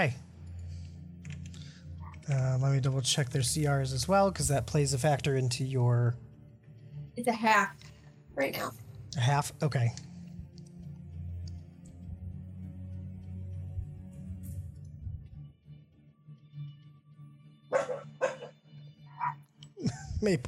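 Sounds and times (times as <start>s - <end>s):
speech: 0.0s - 0.2s, 2.3s - 6.2s, 7.2s - 10.1s, 20.2s - 20.4s
dog barking through open window: 17.7s - 19.4s.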